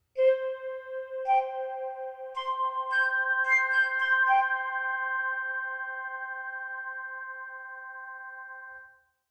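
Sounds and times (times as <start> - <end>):
flute: 0.1 - 8.0.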